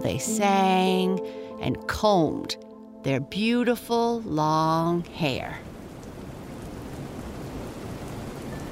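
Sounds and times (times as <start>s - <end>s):
speech: 0.1s - 5.7s
heavy rain beating against a window: 5.2s - 8.7s.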